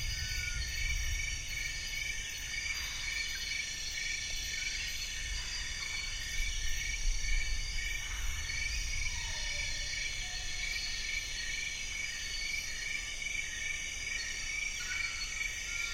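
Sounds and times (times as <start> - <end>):
thunderstorm rumbling: 0.0 - 2.0
insect chorus buzzing at dusk in Mohoba forest, Congo Basin Rainforest: 0.0 - 15.9.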